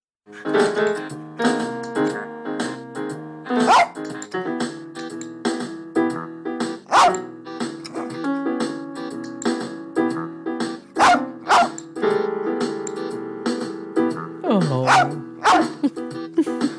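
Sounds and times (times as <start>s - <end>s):
speech: 0.3s - 1.6s
keyboards played by a rat terrier: 0.3s - 16.7s
melodic backing track: 0.3s - 16.7s
blind rat terrier barking: 3.6s - 4.0s, 6.9s - 7.3s, 11.0s - 11.8s, 14.8s - 15.8s.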